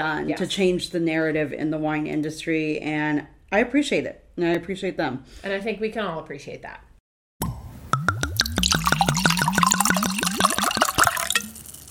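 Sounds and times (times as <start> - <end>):
speech: 0.0 - 6.9
wine glugging out of a bottle into a glass: 7.9 - 11.8.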